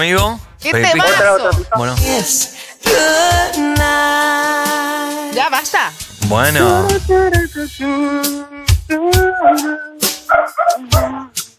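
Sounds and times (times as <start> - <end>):
speech: 0.0 - 4.1, 5.3 - 11.3
singing: 1.8 - 5.4, 6.2 - 11.5
dog howling and whimpering along with singing: 9.2 - 11.3.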